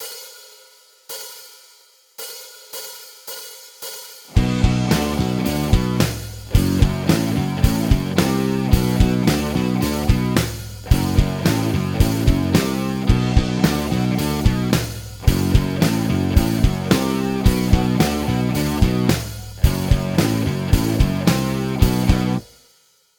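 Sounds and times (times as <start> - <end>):
guitar riff: 4.4 - 22.5.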